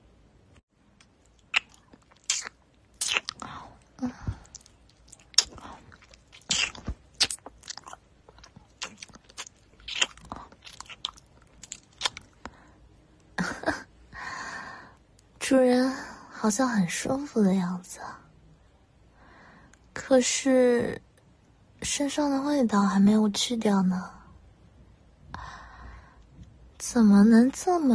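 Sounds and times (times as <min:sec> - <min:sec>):
wet licking and mouth sounds: 0:01.0 - 0:12.5
speech: 0:16.4 - 0:18.2, 0:20.1 - 0:21.0, 0:22.0 - 0:24.2, 0:26.9 - 0:27.9.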